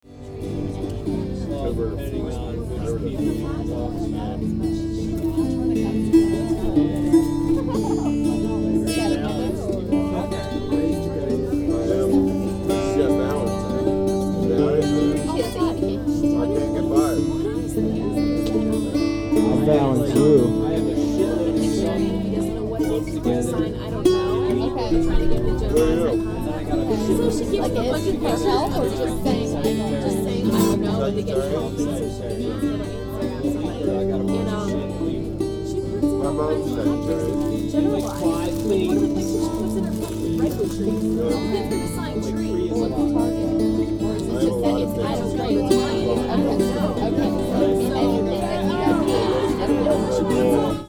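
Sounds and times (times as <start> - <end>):
bouzouki playing at a folk festival campground: 0.0 - 50.8
laughter: 0.5 - 50.8.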